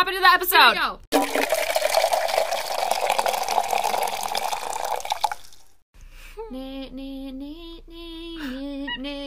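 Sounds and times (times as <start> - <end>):
speech: 0.0 - 1.6, 6.5 - 7.6
sparkling water fizzing: 1.2 - 5.8
sparkling water pouring into a glass: 1.2 - 5.8.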